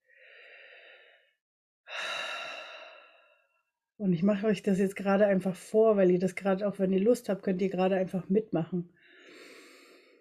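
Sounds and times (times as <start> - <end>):
deep breath in and out: 0.0 - 3.6, 9.0 - 10.1
speech: 4.0 - 9.0.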